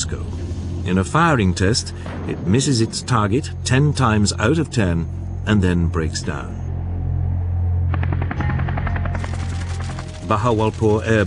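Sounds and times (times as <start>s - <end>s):
speech: 0.8s - 6.6s, 10.3s - 11.2s
helicopter engine humming: 6.7s - 10.6s
helicopter rotor blades chopping: 7.9s - 11.2s.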